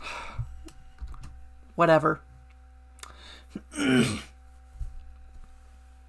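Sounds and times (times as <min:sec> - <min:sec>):
steady low hum: 0:00.0 - 0:06.0
speech: 0:01.8 - 0:02.3, 0:03.8 - 0:04.3
person clearing throat: 0:03.6 - 0:04.3.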